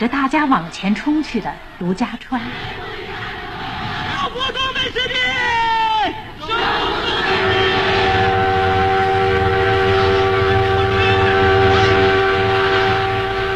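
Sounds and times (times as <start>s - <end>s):
speech: 0.0s - 3.0s
freight train heading south toward Nanjing rumbling: 3.4s - 13.5s.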